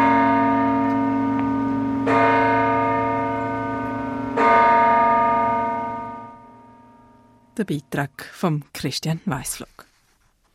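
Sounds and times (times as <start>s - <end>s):
church bells ringing: 0.0s - 7.5s
speech: 7.6s - 9.8s.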